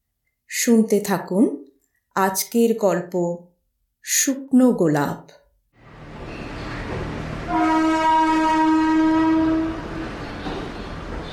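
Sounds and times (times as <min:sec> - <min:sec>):
speech: 0:00.6 - 0:01.6, 0:02.2 - 0:05.4
train rumbling into a station: 0:05.8 - 0:11.3.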